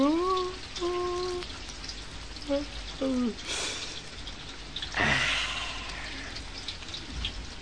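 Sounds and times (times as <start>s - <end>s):
steady rain pattering down: 0.0s - 7.6s.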